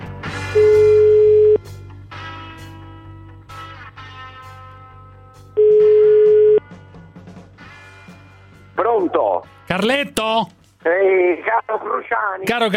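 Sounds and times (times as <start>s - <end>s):
music: 0.0s - 12.7s
ringback tone of an outgoing telephone call: 0.6s - 1.6s, 5.6s - 6.6s
speech: 9.8s - 12.7s.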